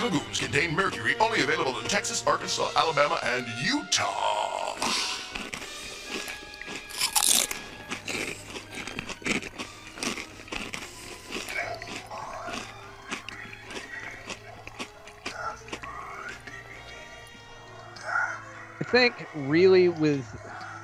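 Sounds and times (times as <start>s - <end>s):
speech: 0.1s - 5.1s, 18.9s - 20.5s
crunchy munching of black legumes as a snack: 4.5s - 18.9s.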